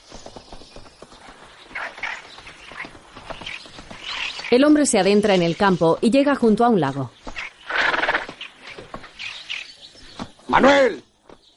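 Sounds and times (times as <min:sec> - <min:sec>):
faint bird chirps: 0:00.0 - 0:11.5
hooves thumping while riding: 0:00.0 - 0:11.5
speech: 0:04.5 - 0:07.2, 0:10.5 - 0:11.0
horse whinnying: 0:07.6 - 0:08.4.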